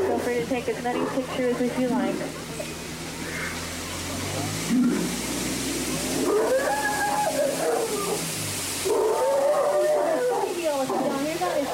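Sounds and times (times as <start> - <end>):
speech: 0.3 - 2.5, 4.7 - 5.4, 6.2 - 6.8
Indian elephant calling at a bathing pool: 0.9 - 4.0, 6.1 - 11.7.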